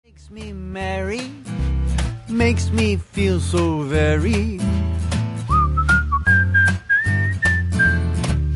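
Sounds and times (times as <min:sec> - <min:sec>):
rhythmic instrumental accompaniment with a bouncy beat: 0:00.1 - 0:08.5
speech: 0:00.2 - 0:01.6, 0:02.3 - 0:04.8
person whistling a bright sliding melody: 0:05.4 - 0:08.5.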